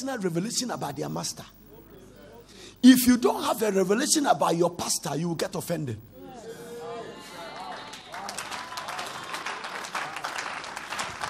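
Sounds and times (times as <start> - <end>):
speech: 0.0 - 1.6, 2.8 - 6.1
audience clapping at a church sermon: 7.3 - 11.2.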